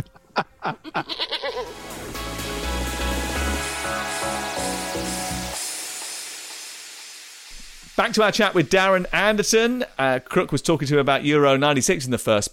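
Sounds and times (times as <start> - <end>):
goat bleating: 0.8 - 1.7
loud rhythmic music: 1.6 - 8.0
speech: 8.0 - 12.5.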